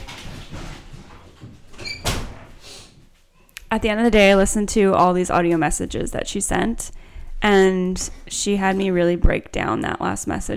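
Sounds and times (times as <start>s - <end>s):
sliding door opening to let a pet out: 1.6s - 2.6s
speech: 3.7s - 10.5s.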